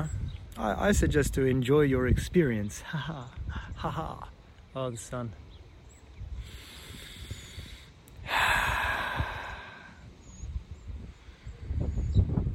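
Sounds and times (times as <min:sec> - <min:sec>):
speech: 0:00.0 - 0:05.4
slow deep breathing: 0:06.3 - 0:10.4.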